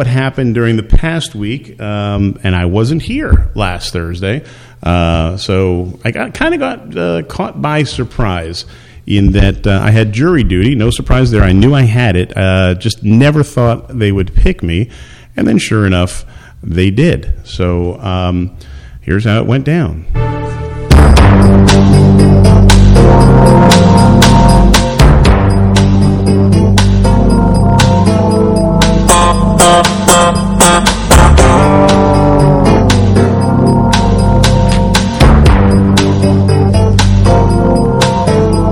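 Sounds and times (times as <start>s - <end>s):
speech: 0.0s - 20.4s
instrumental TV crime drama theme music: 20.1s - 38.7s.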